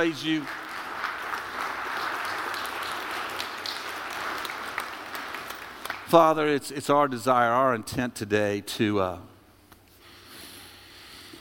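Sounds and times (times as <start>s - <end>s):
speech: 0.0s - 0.6s, 6.1s - 9.3s
large crowd clapping in a big room: 0.0s - 6.2s.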